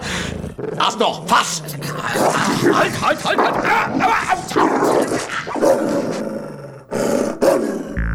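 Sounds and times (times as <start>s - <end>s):
dog growling and snarling: 0.0s - 8.0s
speech: 0.6s - 6.3s.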